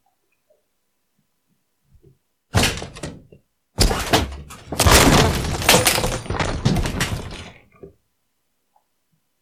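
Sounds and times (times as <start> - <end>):
rough knocking and scraping: 2.6 - 8.0
package being smashed open by hand: 3.8 - 7.6.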